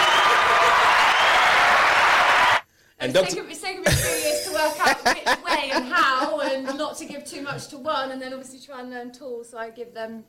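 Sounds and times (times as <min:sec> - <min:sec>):
audience applause: 0:00.0 - 0:02.6
speech: 0:03.0 - 0:10.2
laughter: 0:03.9 - 0:07.1.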